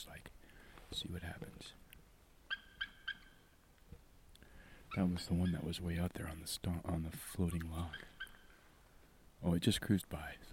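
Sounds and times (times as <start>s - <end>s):
speech: 0.9s - 1.8s, 5.0s - 8.1s, 9.4s - 10.5s
eagle calling to its mate: 2.4s - 3.7s, 4.6s - 6.4s, 7.1s - 8.9s.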